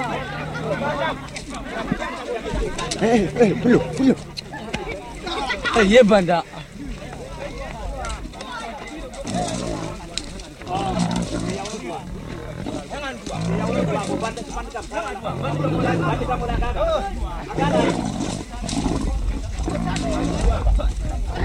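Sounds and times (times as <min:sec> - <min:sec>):
lion with a trap on it roaring as it charges: 0:00.0 - 0:01.3, 0:09.2 - 0:14.5, 0:15.2 - 0:16.8, 0:17.4 - 0:21.4
laughter: 0:00.0 - 0:07.7, 0:12.8 - 0:21.4.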